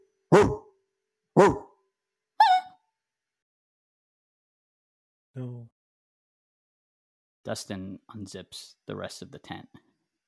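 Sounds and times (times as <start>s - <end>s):
speech: 0.3s - 0.6s, 1.4s - 1.7s, 7.4s - 9.9s
heavy dog barking at a forest campsite at night: 0.3s - 0.7s, 1.4s - 1.8s.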